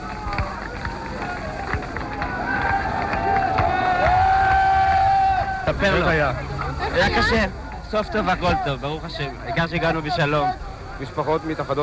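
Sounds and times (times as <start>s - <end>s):
crowd running footsteps: 0.0s - 5.7s
overlapping shouts and babble: 0.0s - 11.1s
crowd cheering excitedly: 0.0s - 11.2s
speech: 5.8s - 11.8s.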